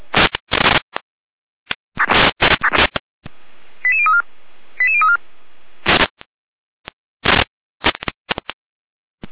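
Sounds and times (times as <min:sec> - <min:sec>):
harsh radio static bursts: 0:00.0 - 0:01.0, 0:01.7 - 0:03.0, 0:05.8 - 0:06.2, 0:07.2 - 0:08.6.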